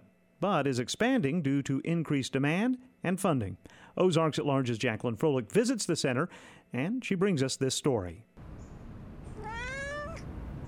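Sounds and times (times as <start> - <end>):
speech: 0.4 - 8.3
gray cat meowing: 9.3 - 10.3.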